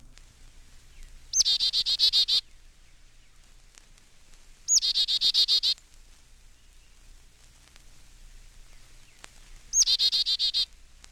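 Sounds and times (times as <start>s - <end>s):
Carolina Chickadee call with buzzy dee notes: 0.8s - 2.6s, 4.7s - 5.8s, 8.8s - 10.7s.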